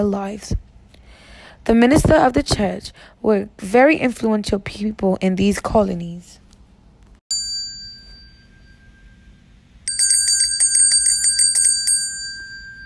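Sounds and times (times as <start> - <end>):
speech: 0.0 - 0.6, 1.6 - 6.4
bell ringing: 7.3 - 12.8.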